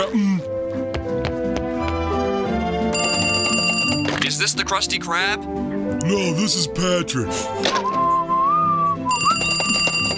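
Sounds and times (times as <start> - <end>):
sustained tonal music: 0.0 - 10.1
telephone bell ringing: 2.9 - 4.2, 9.1 - 10.1
speech: 4.4 - 8.0.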